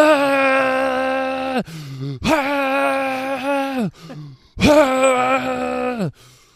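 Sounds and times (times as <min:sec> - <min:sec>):
voice imitating a scream with wailing cries: 0:00.0 - 0:03.9, 0:04.6 - 0:06.2
short breathy sounds: 0:01.5 - 0:02.6, 0:03.7 - 0:06.5.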